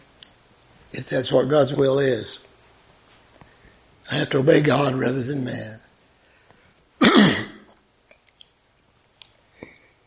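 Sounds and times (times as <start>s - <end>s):
speech: 1.0s - 2.5s, 4.1s - 5.8s
throat clearing during a Bible reading: 7.0s - 7.8s.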